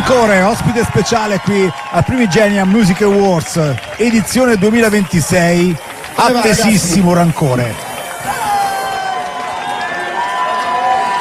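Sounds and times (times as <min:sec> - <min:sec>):
large crowd cheering a guest: 0:00.0 - 0:11.1
speech: 0:00.1 - 0:07.8
sustained high whoops or whistles: 0:07.7 - 0:11.1.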